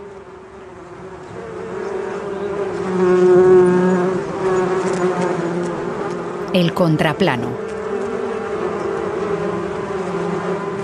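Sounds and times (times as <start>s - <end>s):
bee swarm buzzing: 1.1s - 10.8s
speech: 6.6s - 7.7s.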